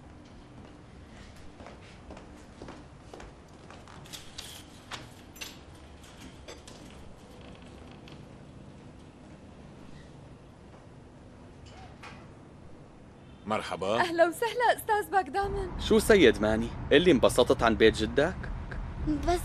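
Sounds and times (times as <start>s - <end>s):
steady low noise: 0.0s - 19.4s
door creaking open: 3.9s - 8.4s, 11.6s - 12.4s
speech: 13.5s - 18.5s, 19.1s - 19.4s.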